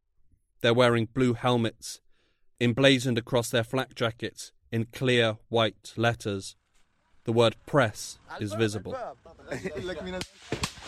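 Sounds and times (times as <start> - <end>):
speech: 0.6 - 2.0, 2.6 - 6.6, 7.2 - 10.8
laughter: 8.4 - 10.3
gunshots cracking: 10.1 - 10.8.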